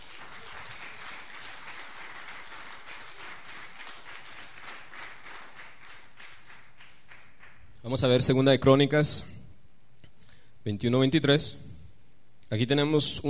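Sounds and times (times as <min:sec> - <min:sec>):
church audience applauding: 0:00.0 - 0:07.7
speech: 0:07.8 - 0:09.4, 0:10.6 - 0:11.7, 0:12.5 - 0:13.2.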